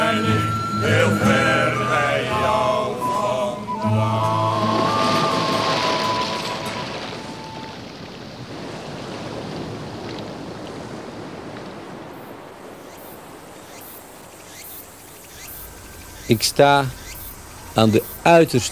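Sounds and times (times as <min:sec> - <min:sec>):
faint tonal music: 0:00.0 - 0:07.8
waves at a bay: 0:00.0 - 0:18.6
wind at a bay: 0:00.0 - 0:18.6
speech: 0:16.3 - 0:17.0, 0:17.8 - 0:18.6.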